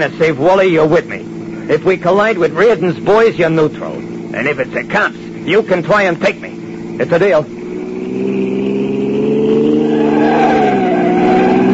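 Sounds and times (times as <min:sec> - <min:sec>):
speech: 0:00.0 - 0:07.6, 0:08.2 - 0:08.4
car engine roaring while speeding around a corner: 0:00.0 - 0:11.7
car tire squeal: 0:07.6 - 0:11.7.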